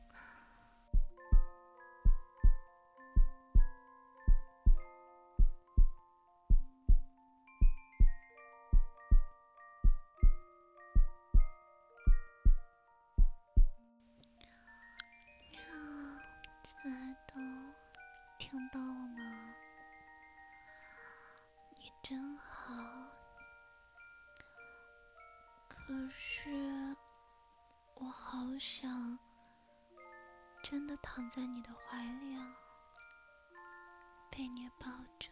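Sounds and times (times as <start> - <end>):
soft chiming melodic tones: 0.0 - 35.3
steady heartbeat thumping: 1.0 - 1.5, 2.1 - 2.6, 3.2 - 10.4, 11.0 - 12.6, 13.2 - 13.8
speech: 16.7 - 17.6, 18.4 - 19.5, 22.1 - 23.2, 25.9 - 26.6, 28.0 - 29.2, 30.7 - 32.6, 34.4 - 35.3.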